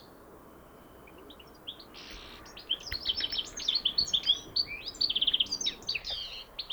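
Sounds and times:
European goldfinch Carduelis carduelis twittering: 2.0s - 6.7s.

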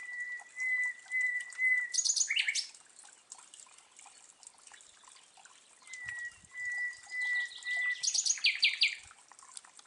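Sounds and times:
common nightingale Luscinia megarhynchos singing: 0.0s - 2.8s, 5.8s - 9.0s.

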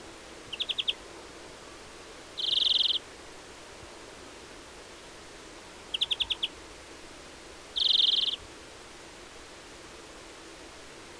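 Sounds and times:
European greenfinch Chloris chloris chipping: 0.5s - 1.0s, 2.4s - 3.0s, 7.8s - 8.4s
European greenfinch Chloris chloris buzzy trill: 2.4s - 3.0s, 7.8s - 8.4s.

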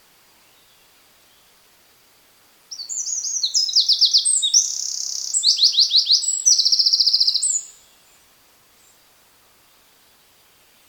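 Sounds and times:
Eurasian wren Troglodytes troglodytes song: 2.7s - 8.1s.

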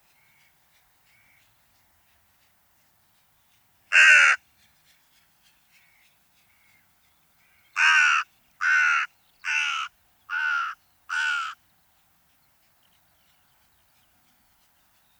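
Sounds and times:
carrion crow Corvus corone cawing: 3.9s - 4.4s, 7.8s - 11.6s.

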